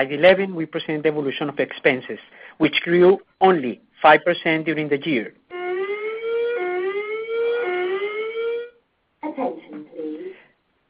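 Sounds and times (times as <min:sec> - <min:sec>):
speech: 0:00.0 - 0:05.4
loud electronic building alarm blaring a harmonic tone: 0:05.5 - 0:08.8.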